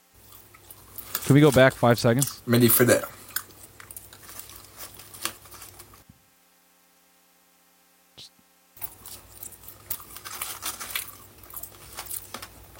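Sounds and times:
person chewing a french fry: 0.2 - 1.2, 3.0 - 6.0, 8.8 - 12.7
speech: 1.3 - 3.2.

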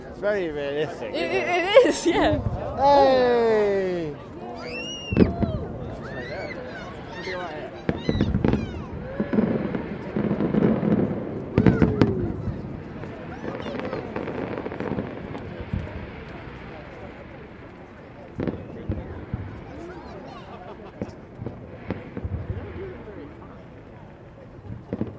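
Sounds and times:
outdoor firework bangs and crackles: 0.0 - 25.1
speech: 0.2 - 5.3
laughter: 1.0 - 4.3, 20.3 - 21.2
shrill rising whistle from a screaming firework rocket: 4.6 - 9.2.

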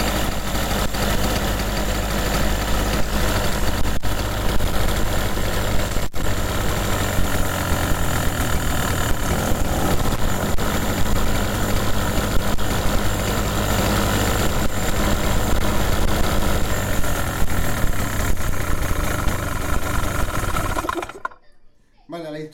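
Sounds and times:
flooded car engine running and vibrating heavily: 0.0 - 21.4.

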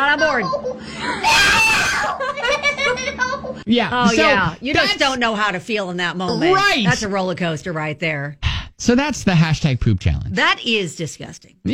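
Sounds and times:
speech: 0.1 - 1.7, 3.7 - 11.7
laughter: 0.3 - 5.1
woman screaming: 1.1 - 2.3
woman's broken wailing cries: 1.1 - 2.4.

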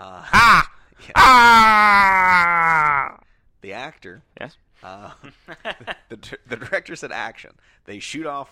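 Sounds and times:
man imitating agonized scream of dying man: 0.2 - 3.2
speech: 4.0 - 8.4.

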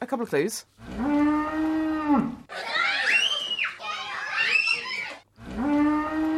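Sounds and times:
speech: 0.1 - 1.1, 2.1 - 2.7
cows mooing: 0.9 - 2.4, 5.5 - 6.3
shrill excited children's voices: 2.5 - 5.3.

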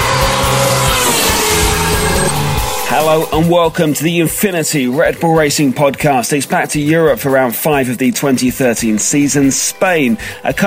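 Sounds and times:
Formula One race car tires squealing doing donuts: 0.0 - 4.1
Formula One race car engine roaring doing donuts: 0.0 - 4.8
speech: 2.9 - 10.6.

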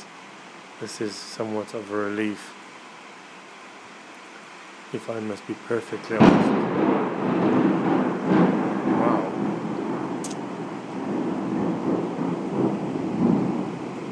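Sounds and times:
heavy rain in an African thunderstorm: 0.0 - 14.1
speech: 0.8 - 2.6, 4.9 - 6.6
deep rolling thunder in an African thunderstorm: 6.0 - 14.1.

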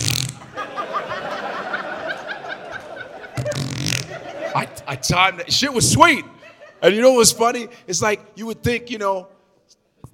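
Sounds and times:
voice making a goofy mouth imitation of a fart: 0.0 - 0.5, 3.4 - 4.2
snickering laughter: 0.4 - 4.8
speech: 4.6 - 9.3.

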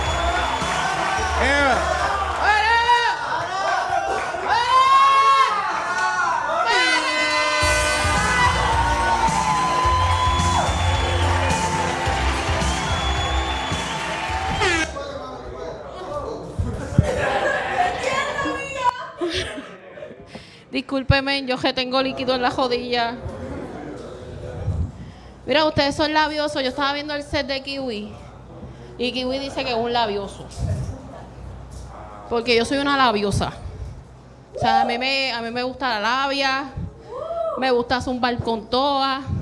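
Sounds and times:
live audience applause: 0.0 - 2.7, 7.8 - 14.9
live audience cheering and whooping: 0.0 - 14.9
laughter: 16.8 - 20.2
speech: 21.0 - 23.3, 25.5 - 28.2, 29.0 - 30.7, 32.3 - 33.6, 34.6 - 36.8, 37.6 - 39.3.

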